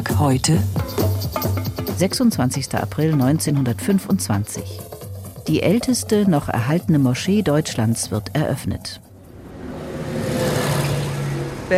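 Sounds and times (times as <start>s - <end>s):
speech: 0.1s - 9.0s
buses and cars on a wide city square in Berlin-Wilmersdorf: 9.1s - 11.7s.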